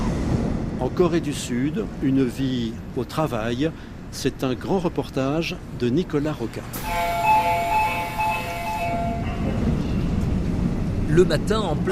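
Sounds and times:
crowded subway train rolling and rumbling in Seoul: 0.0s - 11.9s
speech: 0.8s - 7.4s, 11.1s - 11.9s
sustained melodic chime on a crowded subway train in Seoul: 6.8s - 9.6s.

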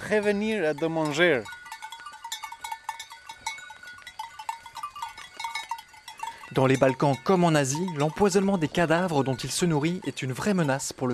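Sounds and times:
many bells of a goat and sheep herd clanking and jingling in a Balkan meadow: 0.0s - 11.1s
speech: 0.1s - 1.6s, 6.5s - 11.1s.

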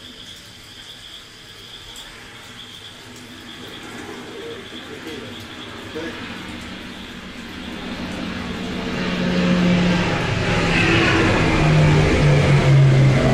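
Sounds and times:
cargo plane low-altitude flyover with propeller engine roar: 0.0s - 13.3s.

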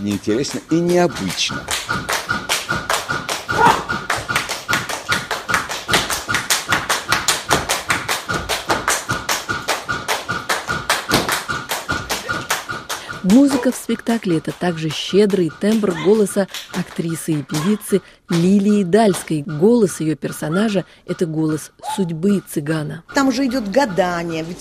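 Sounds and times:
speech: 0.0s - 2.2s, 13.3s - 24.6s
rapid tap dancing footwork with heel and toe taps: 0.0s - 18.6s.

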